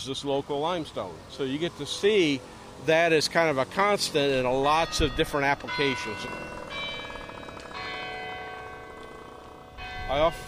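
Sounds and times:
speech: 0.0 - 6.6, 10.1 - 10.4
clock tower bells of a campus student building chiming: 4.5 - 10.4.

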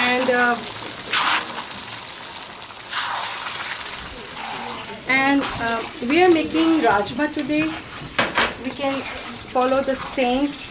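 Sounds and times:
water running into a cooking pot for cooking rajma: 0.0 - 7.1
speech: 0.3 - 0.7, 5.1 - 7.9, 8.7 - 10.6.

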